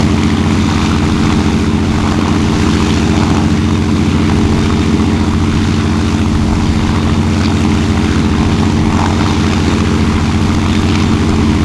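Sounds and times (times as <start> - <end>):
bomber engines heard from the rear: 0.0 - 11.6.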